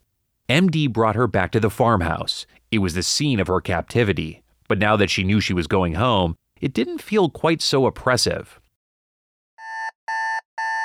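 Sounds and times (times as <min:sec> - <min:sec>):
speech: 0:00.5 - 0:08.6
alarm clock buzzing in harsh electronic bursts: 0:09.6 - 0:10.8.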